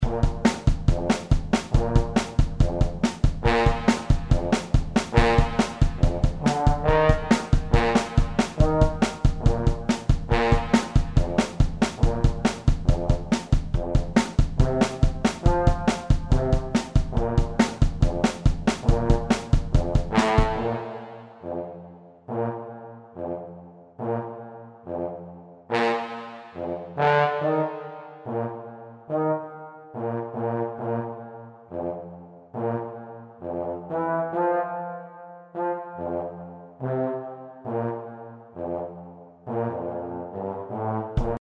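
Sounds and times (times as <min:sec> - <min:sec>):
bass tuba playing blues: 0:00.0 - 0:34.9, 0:35.5 - 0:41.3.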